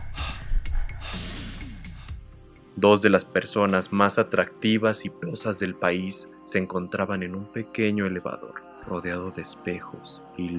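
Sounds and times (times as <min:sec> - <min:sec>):
heavy agitated breathing of two people: 0:00.0 - 0:02.4
speech: 0:02.8 - 0:10.5.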